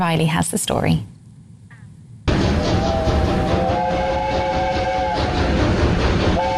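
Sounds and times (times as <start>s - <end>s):
speech: 0.0s - 1.2s
steam locomotive roaring and hissing: 2.3s - 6.5s
steam locomotive high whistle: 2.6s - 5.5s.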